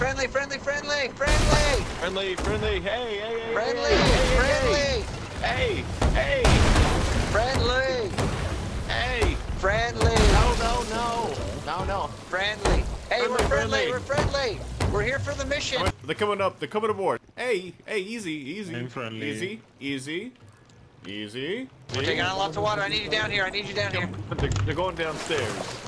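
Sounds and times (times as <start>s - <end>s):
speech: 0.2s - 8.3s, 8.9s - 20.4s, 21.0s - 25.8s
cannon fire between sailing ships in a naval video game battle: 4.0s - 11.0s.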